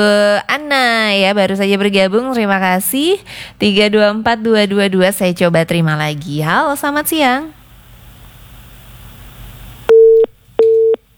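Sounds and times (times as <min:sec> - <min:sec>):
speech: 0:00.0 - 0:07.6
telephone busy signal of a call not connecting: 0:09.9 - 0:11.0.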